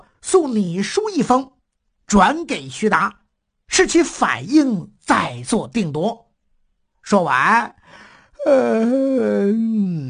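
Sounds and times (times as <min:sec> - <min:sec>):
speech: 0:00.3 - 0:06.2, 0:07.0 - 0:10.0
human voice imitating a yawn: 0:08.4 - 0:10.0.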